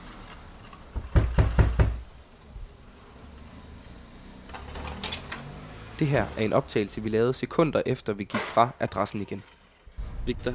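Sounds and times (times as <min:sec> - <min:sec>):
firm knocks on a door: 0:01.0 - 0:02.1
speech: 0:06.0 - 0:09.6, 0:10.3 - 0:10.5
rumble: 0:09.8 - 0:10.5.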